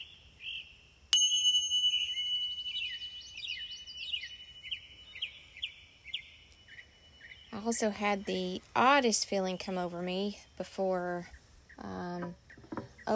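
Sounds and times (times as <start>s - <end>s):
bell ringing: 1.2s - 2.9s
speech: 7.6s - 12.4s.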